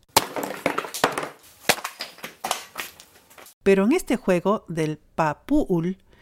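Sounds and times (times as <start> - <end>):
clay pot struck and smashed during Yucatec Maya rain ceremony in Mexico: 0.0 - 3.4
speech: 3.6 - 6.0.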